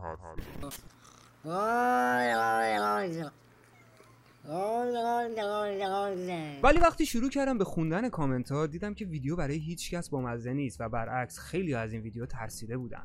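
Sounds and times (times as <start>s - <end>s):
speech: 0.2s - 3.4s, 4.5s - 13.0s
cat yowling: 1.5s - 6.2s.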